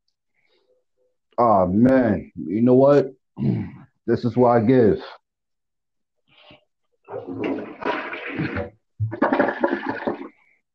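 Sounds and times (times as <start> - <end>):
speech: 1.4 - 5.2
toilet flushing: 7.1 - 10.4.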